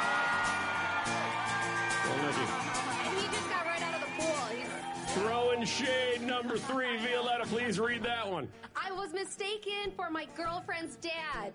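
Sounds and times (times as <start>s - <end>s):
audience applause: 0.0s - 6.2s
speech: 5.6s - 11.5s.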